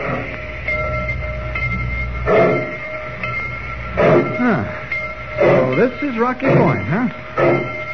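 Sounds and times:
loud rattling surges: 0:00.0 - 0:07.9
train rumbling as it pulls away from the station: 0:00.0 - 0:07.9
speech: 0:05.8 - 0:07.6.

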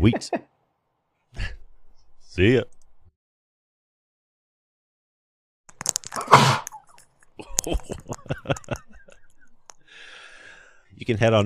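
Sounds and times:
speech: 0:00.0 - 0:00.4, 0:02.4 - 0:02.8, 0:07.7 - 0:08.8, 0:11.0 - 0:11.4
single loud sneeze: 0:06.2 - 0:06.8
scattered laughter: 0:06.7 - 0:09.7.

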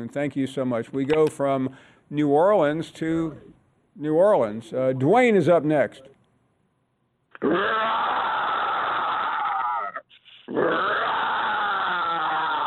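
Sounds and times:
speech: 0:00.0 - 0:06.1, 0:07.4 - 0:08.1
person imitating a tiger's growl with rasping roars: 0:07.4 - 0:12.6.

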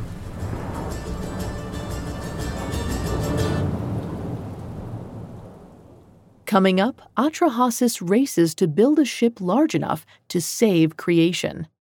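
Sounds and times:
deep thunder rumbling and rolling: 0:00.0 - 0:06.6
steady heavy rain pouring down: 0:00.0 - 0:07.4
speech: 0:06.5 - 0:11.8.

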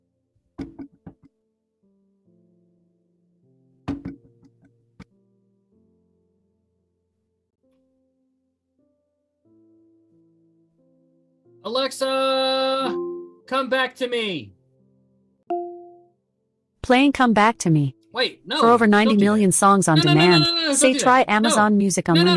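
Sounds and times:
firm knocking on a door: 0:00.6 - 0:01.3, 0:03.9 - 0:04.3
speech: 0:11.6 - 0:14.6, 0:16.9 - 0:22.3.

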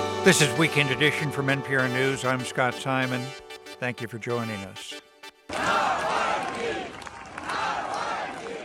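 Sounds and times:
speech: 0:00.2 - 0:05.0
large crowd of mourners chanting and shouting outdoors outside church: 0:05.5 - 0:08.6.

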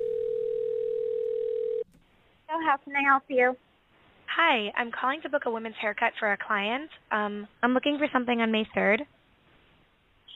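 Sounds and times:
telephone line tone at start of a call: 0:00.0 - 0:01.8
speech: 0:02.6 - 0:03.7, 0:04.4 - 0:09.2.

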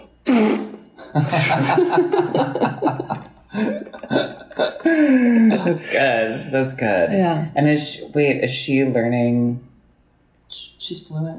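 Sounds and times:
voice making a buzzy raspberry-style imitation of farts: 0:00.0 - 0:00.8
person chuckling and laughing: 0:01.0 - 0:06.2
speech: 0:01.1 - 0:03.9, 0:05.0 - 0:09.7, 0:10.5 - 0:11.3.

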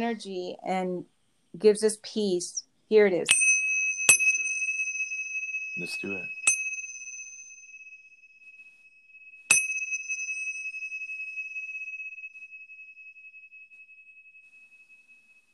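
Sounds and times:
speech: 0:00.0 - 0:03.4, 0:05.8 - 0:06.4
small Tibetan bells chiming: 0:03.3 - 0:08.1, 0:09.5 - 0:15.5.

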